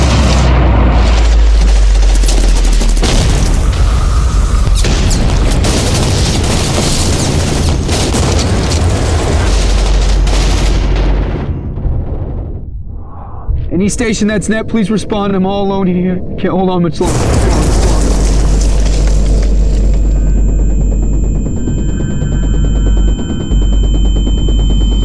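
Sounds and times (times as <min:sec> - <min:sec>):
heavy gunfire in combat: 0:00.0 - 0:12.6, 0:17.0 - 0:23.7
explosions in combat: 0:00.0 - 0:14.7, 0:16.9 - 0:25.0
speech: 0:13.8 - 0:17.6.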